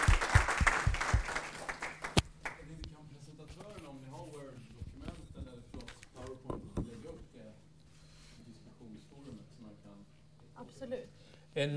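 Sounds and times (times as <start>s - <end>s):
audience applause with dense rapid clapping: 0.0s - 2.6s
speech: 11.6s - 11.7s.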